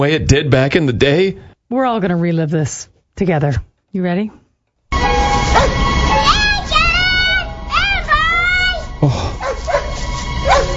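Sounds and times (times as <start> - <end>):
speech: 0.0 - 4.4, 9.0 - 9.3
faint tonal hum: 4.9 - 10.7
dog barking and whimpering with excited yips and whining cries: 5.5 - 5.8, 9.4 - 10.7.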